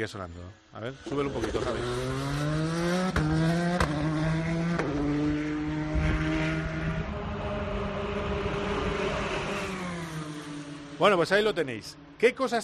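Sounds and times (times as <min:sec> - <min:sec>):
speech: 0:00.0 - 0:03.6, 0:11.0 - 0:12.6
high-revving race car engine with gear shifts: 0:01.0 - 0:11.7.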